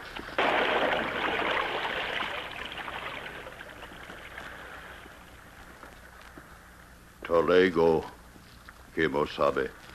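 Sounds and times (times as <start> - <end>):
splash of a broken sword thrown into fast-moving river water: 0.4 - 5.0
fast-moving river water rushing: 0.4 - 5.7
speech: 7.4 - 8.2, 9.0 - 9.9.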